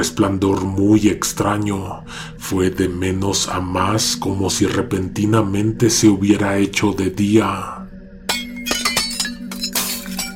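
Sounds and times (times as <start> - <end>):
speech: 0.0 - 7.8
steady low hum: 0.0 - 10.3
glass pieces falling and tinkling: 8.3 - 10.3
glass shattering indoors in a house: 8.3 - 10.3.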